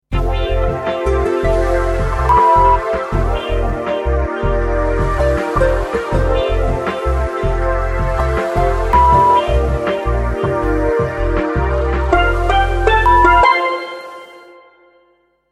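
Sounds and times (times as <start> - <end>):
sound bed music: 0.0 - 15.1
5-tone dream sound logo: 0.3 - 7.4, 8.2 - 10.0.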